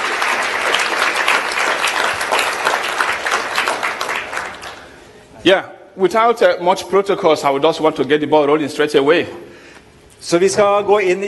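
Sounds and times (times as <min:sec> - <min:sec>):
church congregation applauding: 0:00.0 - 0:05.1
speech: 0:05.4 - 0:09.5, 0:10.2 - 0:11.2.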